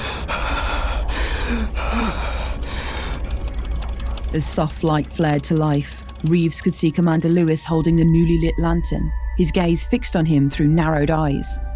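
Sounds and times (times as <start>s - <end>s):
hard ragged frightened breathing with sharp gasps: 0.0s - 4.0s
tank engine low rumble: 0.0s - 11.7s
speech: 1.5s - 2.1s, 4.3s - 11.7s.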